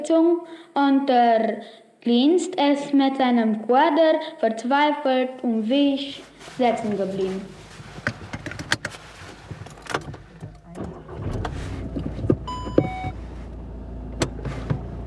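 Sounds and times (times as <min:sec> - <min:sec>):
speech: 0:00.0 - 0:07.6
car engine humming on a trip in Nuremberg: 0:06.2 - 0:15.0
clicks and clunks of a car preparing to set off: 0:06.7 - 0:15.0.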